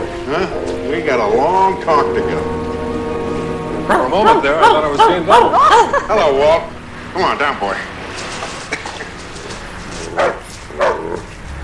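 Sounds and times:
steady hiss: 0.0 - 11.6
speech: 0.3 - 2.6, 3.9 - 7.9
stray dog barking in short sharp woofs: 3.9 - 6.0, 10.1 - 11.3
laughter: 3.9 - 6.8.

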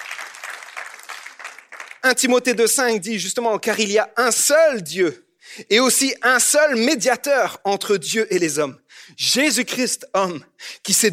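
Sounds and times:
audience applauding God: 0.0 - 2.0
speech: 2.0 - 11.1.

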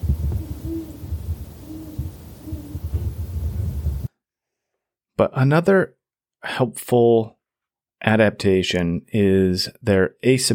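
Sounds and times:
great horned owl hooting: 0.0 - 4.1
speech: 5.2 - 7.4, 8.0 - 10.5.

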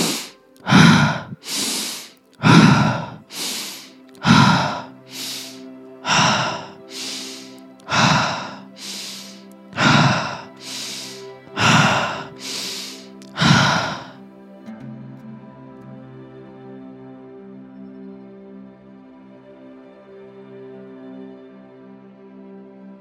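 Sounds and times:
deep forceful breaths in a breathing exercise: 0.0 - 14.2.

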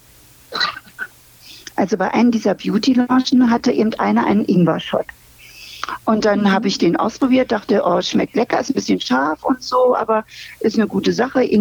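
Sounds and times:
throat clearing: 0.5 - 1.1
speech: 1.8 - 5.2, 6.1 - 11.6.

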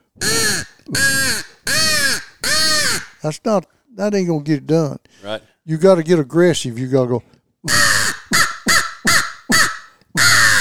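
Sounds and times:
crow caws blown on a hand crow call used as a turkey locator call: 0.2 - 3.2, 7.7 - 10.5
speech: 3.2 - 8.0.

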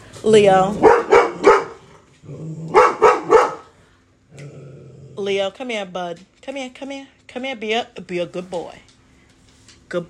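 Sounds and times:
speech: 0.2 - 0.9, 5.2 - 8.9
dog barking: 0.8 - 1.9, 2.7 - 3.8
dog growling: 1.8 - 3.0, 4.3 - 5.4.

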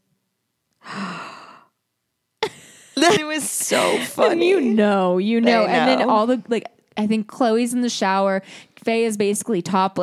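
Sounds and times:
person imitating a gasp: 0.8 - 1.7
speech: 3.1 - 10.0.

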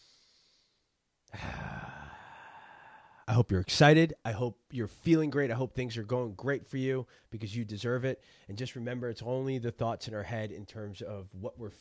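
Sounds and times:
deep breath: 0.0 - 3.3, 8.2 - 8.5
speech: 3.4 - 11.7.

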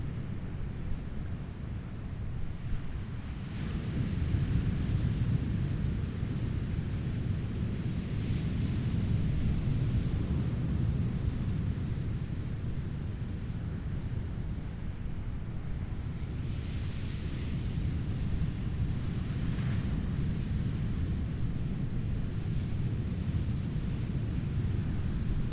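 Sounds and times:
low rumble of surf at a beach: 0.0 - 25.5
waves breaking and spreading: 7.9 - 25.5.

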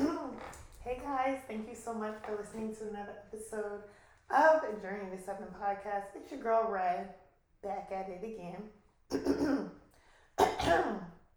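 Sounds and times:
speech: 1.0 - 9.8, 10.6 - 11.1
person clearing throat: 9.1 - 9.7, 10.4 - 11.1.

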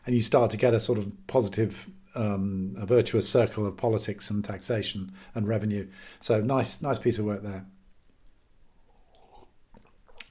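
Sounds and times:
speech: 0.1 - 7.8
slurping tea: 8.8 - 10.2
mouth clicks: 8.9 - 10.2
mouth smack: 9.1 - 10.2.

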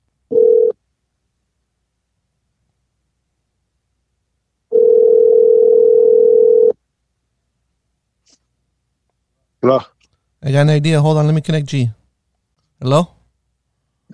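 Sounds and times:
short electronic telephone beep: 0.3 - 0.8, 4.7 - 6.8
speech: 9.6 - 12.0, 12.8 - 13.2.

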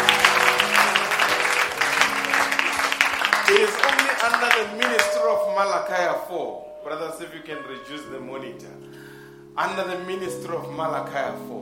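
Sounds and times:
church audience applause: 0.0 - 5.2
speech: 4.3 - 9.0, 9.6 - 11.6.

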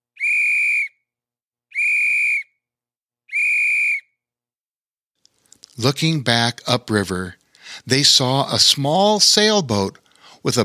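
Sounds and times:
loud sustained whistle blasts: 0.1 - 1.0, 1.7 - 2.6, 3.3 - 4.2
speech: 5.8 - 10.6.

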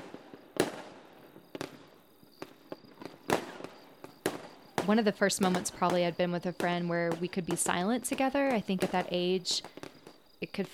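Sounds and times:
fireworks popping and booming: 0.0 - 10.7
steady hum of insects or night ambience: 0.0 - 10.7
speech: 4.9 - 9.8, 10.5 - 10.7.

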